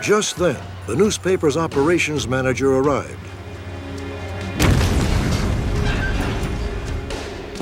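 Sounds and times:
speech: 0.0s - 3.4s
pipe bomb explosion: 4.6s - 6.6s.

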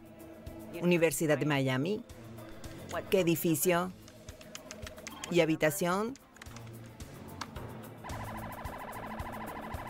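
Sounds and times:
speech: 0.7s - 2.2s, 2.9s - 4.0s, 5.3s - 6.2s
police patrol car siren wailing in yelp cycles: 8.1s - 9.8s.

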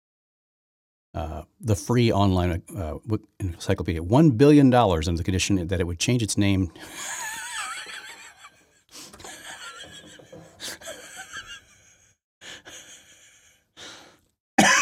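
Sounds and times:
speech: 1.2s - 7.2s
laughter: 6.8s - 12.1s
wheezy gasping breaths: 8.9s - 9.4s, 12.4s - 14.4s
man coughing: 14.6s - 14.7s.

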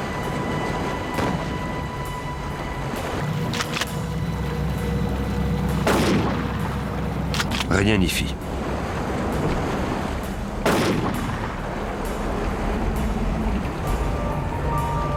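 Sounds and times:
steady noisy rumble: 0.0s - 15.1s
gunshots fired at a floating cooler to sink it: 5.8s - 6.4s, 10.6s - 11.4s
speech: 7.8s - 8.4s.

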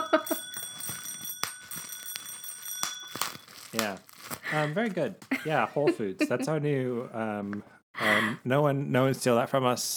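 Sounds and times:
small bell ringing: 0.0s - 3.8s
speech: 3.8s - 9.9s.

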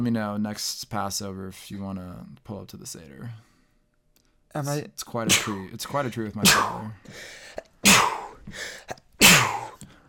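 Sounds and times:
speech: 0.0s - 3.5s, 4.5s - 9.0s
sneezes: 5.3s - 5.7s, 6.4s - 6.9s, 7.8s - 8.4s, 9.2s - 9.8s.

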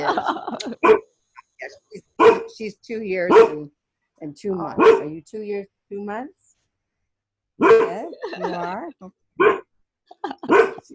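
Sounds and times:
laughter: 0.0s - 0.8s, 8.1s - 8.7s, 10.1s - 10.9s
dog barking at passerby: 0.8s - 1.0s, 2.2s - 2.5s, 3.3s - 3.6s, 4.8s - 5.1s, 7.6s - 8.1s, 9.4s - 9.6s, 10.5s - 10.9s
speech: 2.6s - 6.5s, 7.6s - 9.6s, 10.2s - 10.9s.

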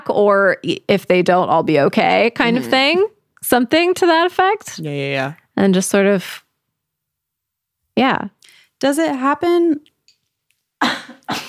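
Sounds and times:
speech: 0.1s - 6.4s, 8.0s - 9.9s
person coughing: 10.8s - 11.4s.

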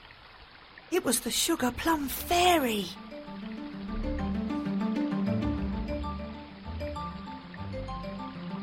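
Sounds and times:
forest stream flowing with a burbling rush: 0.0s - 8.6s
speech: 0.9s - 3.0s
soft sustained musical tones: 2.3s - 8.6s.

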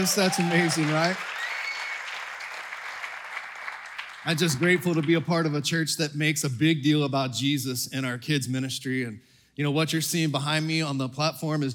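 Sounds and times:
speech: 0.0s - 1.4s, 4.2s - 11.7s
church congregation applauding: 0.0s - 5.6s.

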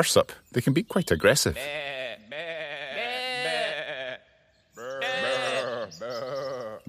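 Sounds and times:
speech: 0.0s - 2.5s
sheep bleating: 1.6s - 6.8s.

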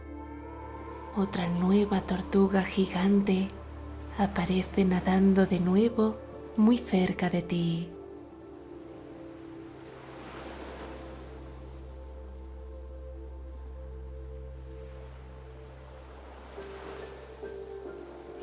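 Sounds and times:
speech: 1.2s - 3.6s, 4.2s - 8.0s
ocean waves washing onto a sea turtle beach: 8.4s - 12.6s, 14.7s - 18.4s.

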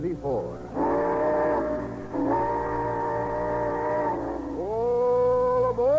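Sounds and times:
low rumble of a train getting under way: 0.0s - 5.7s
train whistle blasts: 0.7s - 5.9s.

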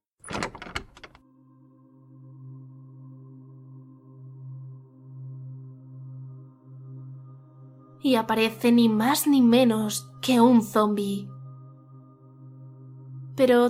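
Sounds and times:
door latch clatter: 0.2s - 1.2s
speech: 8.0s - 11.3s, 13.4s - 13.6s.

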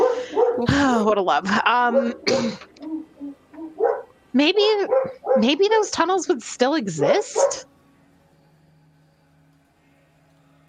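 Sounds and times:
dog barking: 0.0s - 0.7s, 1.9s - 3.0s, 3.6s - 4.1s, 4.8s - 5.6s, 7.0s - 7.7s
speech: 0.6s - 2.7s, 4.4s - 7.7s.

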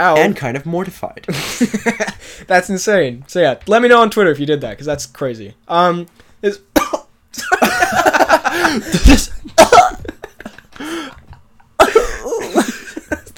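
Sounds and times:
speech: 0.0s - 9.8s
person coughing: 6.8s - 7.1s, 11.8s - 12.7s
laughter: 7.4s - 13.3s.

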